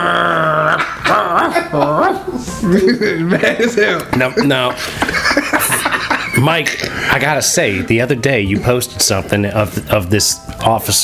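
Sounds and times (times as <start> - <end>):
laughter: 0.0 - 8.1
speech: 1.7 - 5.3, 6.4 - 11.0
dog whining and whimpering: 2.2 - 3.4.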